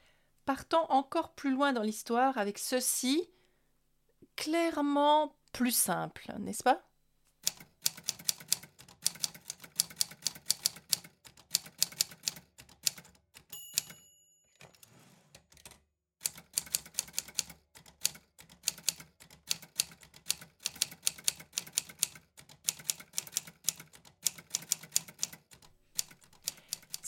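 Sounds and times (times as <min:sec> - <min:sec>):
speech: 0:00.5 - 0:03.4, 0:04.4 - 0:06.9
typewriter keys clacking: 0:07.5 - 0:14.0, 0:14.6 - 0:27.0
typewriter bell ding: 0:13.5 - 0:14.9.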